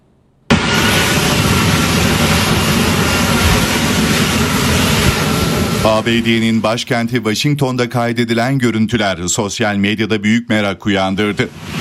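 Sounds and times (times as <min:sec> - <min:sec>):
F-35 fighter jet manoeuvring at low altitude near the White House in Washington: 0:00.5 - 0:08.2, 0:11.1 - 0:11.7
speech: 0:05.8 - 0:11.7.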